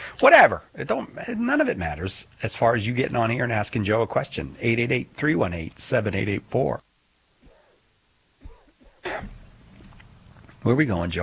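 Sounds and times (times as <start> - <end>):
speech: 0.2 - 6.9, 10.6 - 11.2
harsh coughing: 8.4 - 9.5.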